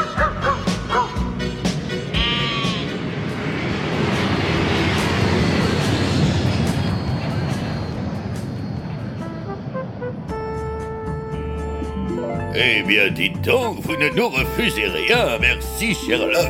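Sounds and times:
airplane engine roar in the cabin of a first-class flight: 0.0s - 12.1s
sustained high-pitched whine: 2.6s - 10.0s
speech: 12.6s - 16.4s.

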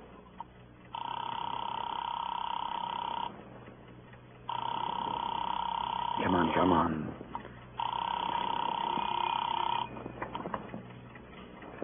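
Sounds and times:
buzzy telephone ringing tone on the line: 0.9s - 3.4s, 4.5s - 7.1s, 7.8s - 10.6s
speech: 6.6s - 7.0s.

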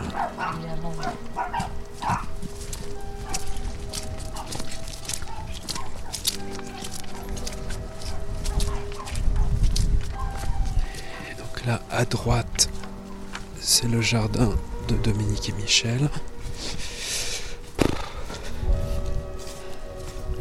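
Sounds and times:
dog barking on a path behind a farm: 0.0s - 2.4s, 3.2s - 3.6s, 4.3s - 11.3s
footsteps: 0.0s - 20.3s
speech: 11.7s - 12.5s, 13.7s - 16.3s.

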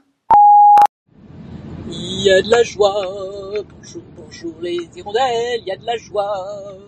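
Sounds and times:
electronic answering machine beep: 0.3s - 0.9s
faint low rumbling noise: 1.1s - 6.8s
speech: 1.9s - 6.8s.

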